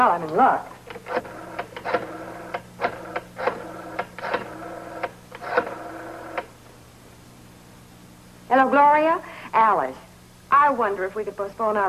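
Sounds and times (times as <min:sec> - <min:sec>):
speech: 0:00.0 - 0:02.0, 0:08.5 - 0:11.8
telephone dialing clicks: 0:00.9 - 0:06.5.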